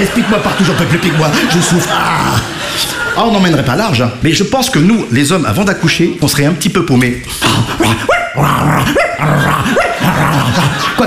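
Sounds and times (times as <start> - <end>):
laughter: 0.0 - 4.0, 9.2 - 11.0
speech: 0.0 - 11.0
person imitating a barking dog: 7.8 - 10.8.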